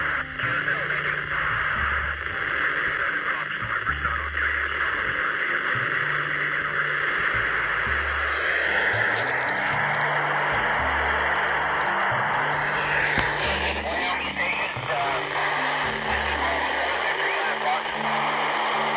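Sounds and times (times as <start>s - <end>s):
faint garbled voices from an amateur radio satellite: 0.0s - 18.9s.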